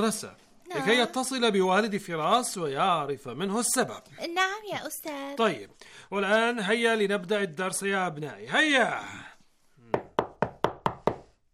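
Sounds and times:
speech: 0:00.0 - 0:09.3
sharp knocks on a classroom door at a school: 0:09.9 - 0:11.3.

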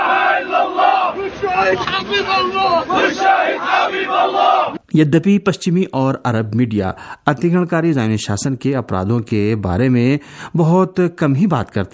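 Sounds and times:
large crowd chanting slogans at a funeral procession for a journalist in Palestine: 0:00.0 - 0:04.8
speech: 0:01.6 - 0:11.9.

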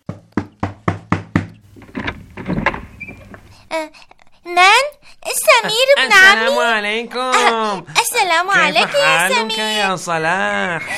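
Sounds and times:
knocking on a door: 0:00.0 - 0:03.6
door opening: 0:01.5 - 0:03.8
shuffling: 0:01.6 - 0:04.0
speech: 0:03.7 - 0:10.9.

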